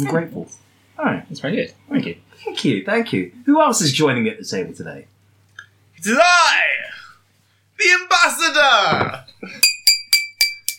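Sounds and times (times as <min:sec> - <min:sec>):
speech: 0:00.0 - 0:05.2, 0:06.0 - 0:06.7, 0:07.8 - 0:09.7
glasses clinking in a toast: 0:09.0 - 0:10.7.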